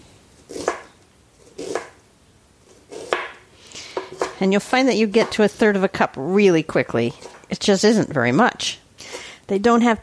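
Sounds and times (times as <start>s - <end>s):
knife chopping an onion on a cutting board: 0.5s - 0.9s, 1.5s - 2.0s, 2.9s - 4.4s, 5.2s - 5.4s
speech: 4.4s - 8.8s, 9.5s - 10.0s.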